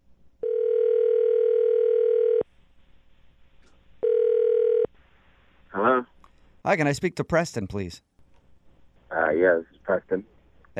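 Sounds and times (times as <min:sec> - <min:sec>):
telephone dial tone: 0:00.4 - 0:02.4, 0:04.0 - 0:04.9
speech: 0:06.7 - 0:08.1, 0:09.3 - 0:10.7.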